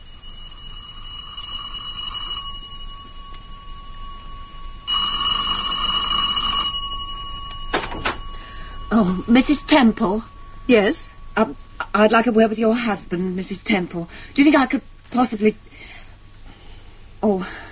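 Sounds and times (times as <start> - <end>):
front doorbell ringing in rattling bursts: 0.0 - 12.8
speech: 8.9 - 15.7, 17.2 - 17.7.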